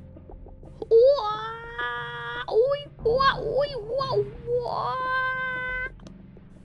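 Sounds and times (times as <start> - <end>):
voice imitating the eerie scream of a folklore creature at the forest edge: 0.8 - 5.9.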